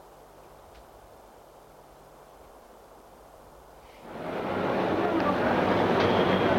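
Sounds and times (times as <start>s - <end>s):
train at a railway station rumbling: 3.9s - 6.5s.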